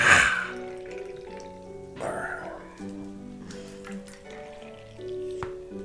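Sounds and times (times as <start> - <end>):
drink pouring into a glass: 0.2 - 5.7.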